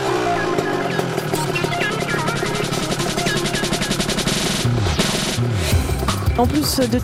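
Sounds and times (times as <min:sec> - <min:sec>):
three-wheeled scooter braking hard on bumpy road with disc brakes: 0:00.0 - 0:04.4
Piaggio MP3 three-wheeled scooter engine running: 0:00.0 - 0:05.9
speech: 0:06.4 - 0:07.0.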